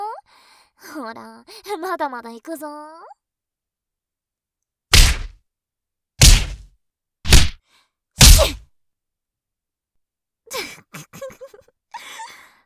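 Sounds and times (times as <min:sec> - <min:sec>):
speech: 0:01.1 - 0:03.2
heavy punches landing on a face: 0:04.9 - 0:05.3, 0:06.2 - 0:06.6, 0:07.3 - 0:07.6, 0:08.2 - 0:08.6
pained gasps and groans: 0:08.2 - 0:08.6.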